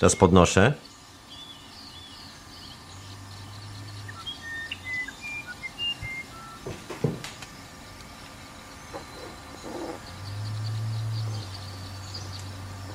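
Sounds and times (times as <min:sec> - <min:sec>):
speech: 0:00.0 - 0:00.9
birds chirping: 0:00.0 - 0:12.9
deep steady electronic test tone hum: 0:00.0 - 0:12.9
soft thuds: 0:06.6 - 0:07.4.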